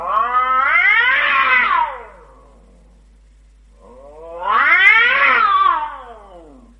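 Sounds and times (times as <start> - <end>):
cat screeching after its tail is stepped on: 0.0 - 2.2, 3.9 - 6.7.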